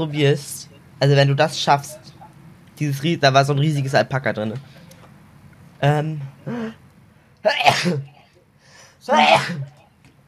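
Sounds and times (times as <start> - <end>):
speech: 0.0 - 2.1, 2.8 - 4.7, 5.8 - 6.8, 7.4 - 8.2, 9.0 - 9.7
loud sneezes: 7.5 - 8.2, 9.1 - 9.8.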